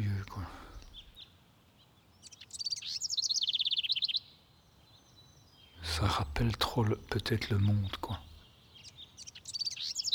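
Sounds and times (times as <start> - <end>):
bird singing at dawn: 0.0 - 1.3, 2.1 - 10.1
speech: 6.1 - 8.3.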